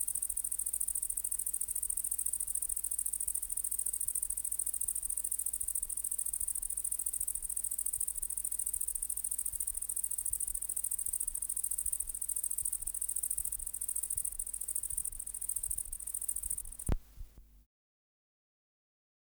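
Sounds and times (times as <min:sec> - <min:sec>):
great green bush-cricket Tettigonia viridissima buzzing trill: 0:00.0 - 0:16.9
sharp click: 0:16.5 - 0:17.1.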